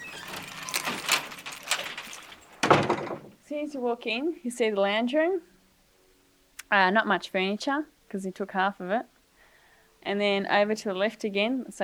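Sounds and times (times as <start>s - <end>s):
keys jingling at a front door: 0.0s - 2.6s
front door lock clicking and rattling: 0.0s - 3.4s
speech: 3.5s - 5.5s, 6.7s - 9.1s, 10.0s - 11.8s.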